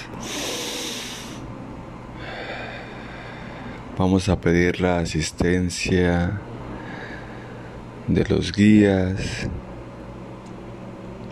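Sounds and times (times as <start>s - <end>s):
slow deep breath in and out: 0.2s - 1.5s, 2.2s - 3.9s, 6.7s - 7.8s
speech: 4.0s - 6.6s, 8.1s - 9.6s.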